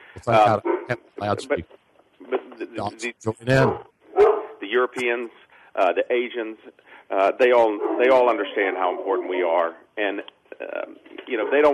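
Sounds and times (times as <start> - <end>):
speech: 0.2 - 3.9, 4.7 - 11.7
guard dog barking: 4.1 - 4.6, 7.8 - 8.2.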